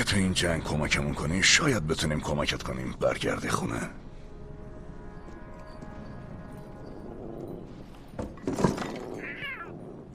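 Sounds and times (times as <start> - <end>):
speech: 0.1 - 4.0
clattering thumps: 8.0 - 9.3
cat meowing: 9.1 - 9.9.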